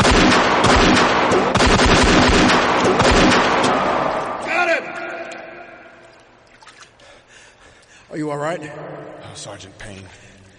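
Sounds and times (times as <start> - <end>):
rapid gunfire: 0.0 - 4.3
speech: 8.3 - 10.3.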